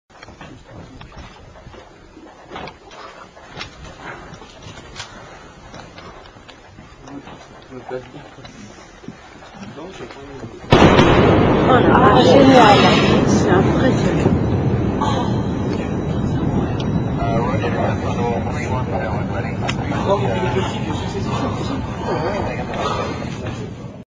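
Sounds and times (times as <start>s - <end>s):
Concorde thunderous sonic boom flying faster than sound: 10.7s - 22.6s.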